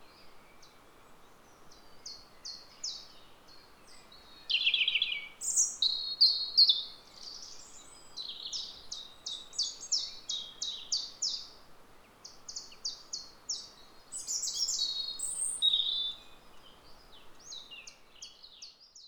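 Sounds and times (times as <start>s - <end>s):
faint background hiss: 0.0s - 19.0s
European robin singing: 3.9s - 11.5s, 12.2s - 19.0s.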